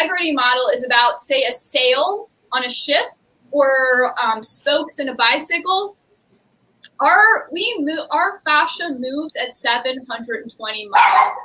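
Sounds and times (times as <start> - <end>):
speech: 0.0 - 6.0, 7.0 - 11.4
dog barking and yipping: 11.0 - 11.4.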